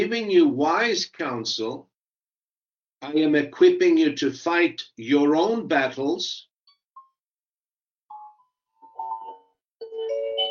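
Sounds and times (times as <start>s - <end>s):
speech: 0.0s - 1.9s, 3.0s - 6.5s
doorbell chime ringing: 8.1s - 10.5s.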